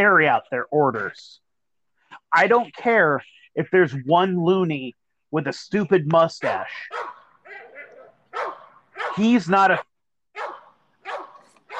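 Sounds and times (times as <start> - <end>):
speech: 0.0 - 1.4, 2.3 - 7.0, 9.2 - 9.9
dog barking: 6.4 - 11.7.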